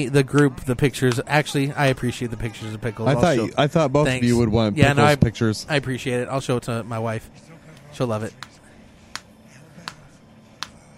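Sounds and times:
speech: 0:00.0 - 0:08.5
low steady hum: 0:00.0 - 0:10.9
hand claps: 0:00.3 - 0:01.3, 0:08.4 - 0:10.8.

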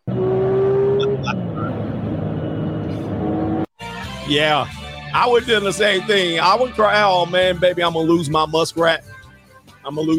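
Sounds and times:
Porsche 911 sports car engine rumbling and revving: 0:00.0 - 0:03.6
speech: 0:04.3 - 0:09.2, 0:09.8 - 0:10.1.

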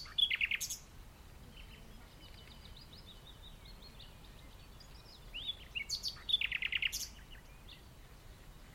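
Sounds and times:
common nightingale singing in the dunes of The Hague, Netherlands: 0:00.0 - 0:08.7.

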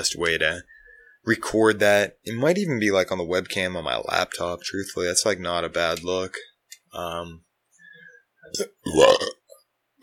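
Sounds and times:
speech: 0:00.0 - 0:07.5, 0:08.5 - 0:09.3
person burping: 0:08.5 - 0:10.0.

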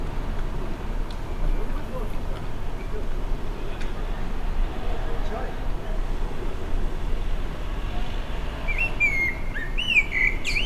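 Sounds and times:
steady low background noise: 0:00.0 - 0:10.6
blackbird singing fluty whistled notes: 0:08.7 - 0:10.6.

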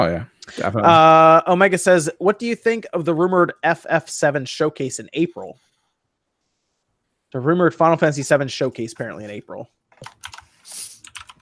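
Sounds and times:
speech: 0:00.0 - 0:05.7, 0:07.3 - 0:10.3
typing on a computer keyboard: 0:10.0 - 0:11.4.

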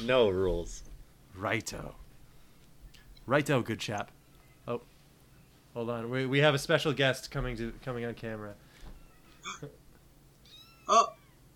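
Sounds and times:
speech: 0:00.0 - 0:02.0, 0:03.2 - 0:04.9, 0:05.8 - 0:08.6, 0:09.4 - 0:09.8, 0:10.9 - 0:11.2
cat meowing: 0:10.4 - 0:11.4.

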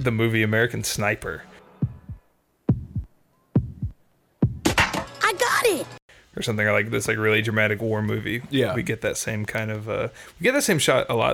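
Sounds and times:
speech: 0:00.0 - 0:01.5, 0:05.8 - 0:11.3
dramatic heartbeat sound effect with heavy low-end throb: 0:01.8 - 0:04.8.

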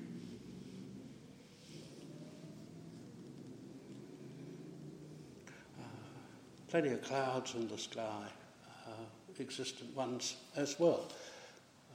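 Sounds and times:
road traffic rumble outdoors: 0:00.0 - 0:06.8
speech: 0:06.7 - 0:11.3.

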